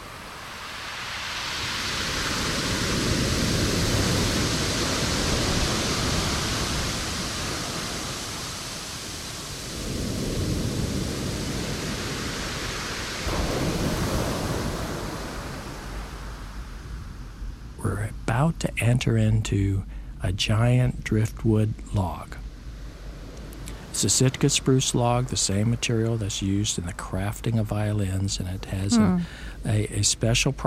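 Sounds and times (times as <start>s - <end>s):
ocean waves washing onto a beach: 0.0s - 17.2s
speech: 18.5s - 22.4s, 24.0s - 30.6s.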